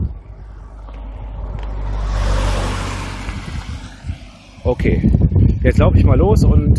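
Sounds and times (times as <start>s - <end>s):
VW diesel car driving past: 0.1s - 5.3s
speech: 4.7s - 6.7s.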